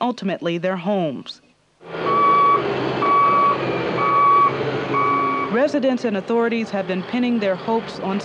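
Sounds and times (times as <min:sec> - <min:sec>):
speech: 0:00.0 - 0:02.0, 0:05.5 - 0:08.2
low rumble of idling trucks: 0:01.8 - 0:08.2
public works truck reversing beeps: 0:02.1 - 0:05.6.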